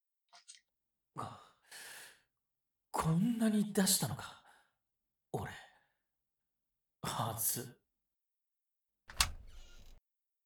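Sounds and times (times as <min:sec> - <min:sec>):
speech: 0:03.0 - 0:04.4, 0:07.1 - 0:07.8
sliding door opening with a click: 0:09.1 - 0:10.0.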